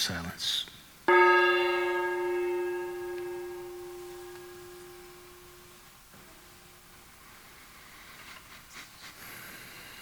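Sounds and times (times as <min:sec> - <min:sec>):
speech: 0:00.0 - 0:01.2
gong being struck: 0:01.1 - 0:05.9.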